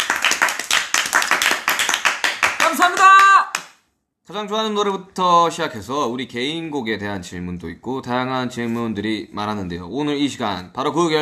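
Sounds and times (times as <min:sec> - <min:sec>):
small group hand clapping at a music group's fan event: 0:00.0 - 0:03.8
speech: 0:04.3 - 0:11.1.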